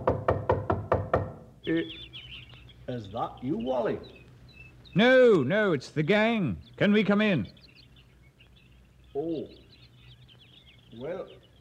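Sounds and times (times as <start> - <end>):
knocking on a front door: 0.0 - 1.5
speech: 1.7 - 2.3, 2.9 - 4.2, 4.9 - 7.6, 9.2 - 9.6, 11.0 - 11.4.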